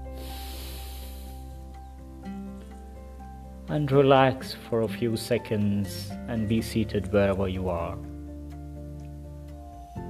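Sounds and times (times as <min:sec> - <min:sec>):
person exhaling deeply during a guided meditation: 0:00.0 - 0:01.6
speech: 0:03.7 - 0:08.1.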